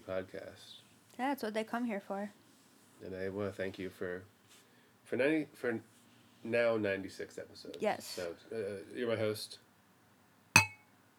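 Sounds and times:
speech: 0.1 - 2.4, 3.0 - 4.4, 5.1 - 9.6
two glasses clinking in a toast: 10.6 - 10.8.

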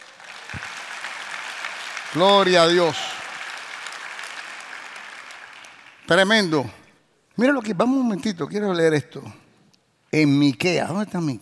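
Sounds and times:
congregation applauding: 0.0 - 6.6
speech: 2.1 - 3.1, 6.1 - 6.8, 7.4 - 9.4, 10.1 - 11.4.

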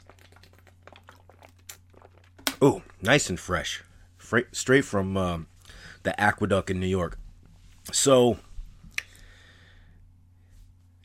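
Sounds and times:
person sipping water from the aqueduct in New York: 0.0 - 2.6
speech: 2.6 - 7.2, 7.9 - 8.5.

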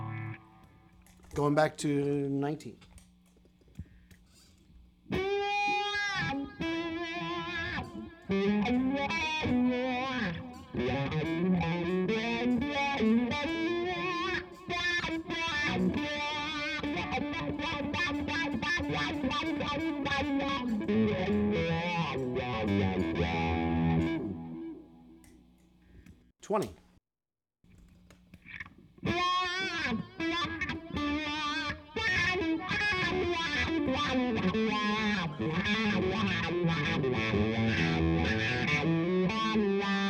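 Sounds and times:
electric guitar on bridge pickup through distortion and wah pedal playing riff: 0.0 - 0.9, 5.1 - 25.0, 29.0 - 40.0
speech: 1.3 - 2.9, 26.5 - 26.8.

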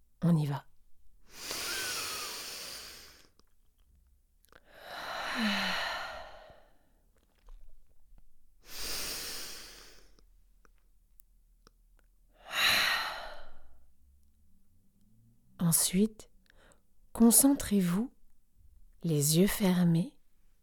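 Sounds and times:
speech: 0.3 - 0.7, 5.4 - 5.7, 15.7 - 16.3, 17.2 - 18.2, 19.0 - 20.2
slow deep inhalations and relaxed sighing exhalations: 1.2 - 3.4, 4.6 - 7.1, 8.6 - 10.3, 12.4 - 13.9, 16.5 - 16.9.

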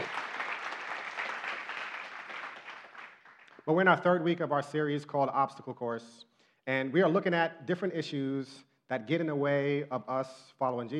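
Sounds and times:
audience applauding: 0.0 - 3.6
speech: 3.7 - 10.9.

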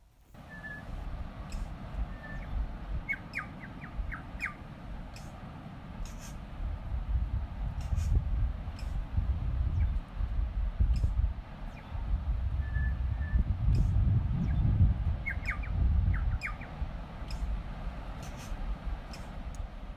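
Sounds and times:
wind at beach: 0.0 - 19.9
tui calling at tree line above beach: 0.4 - 5.4, 6.0 - 6.4, 12.6 - 19.4
surf roar at beach: 0.4 - 19.9.

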